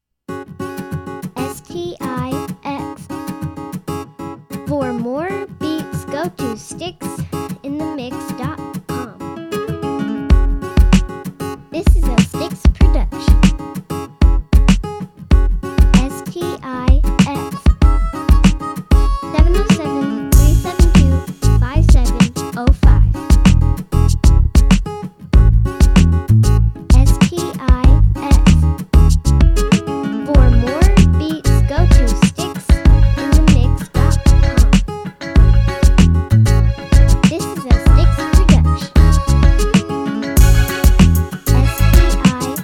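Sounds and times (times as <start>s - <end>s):
Yamaha guitar: 0.3s - 42.6s.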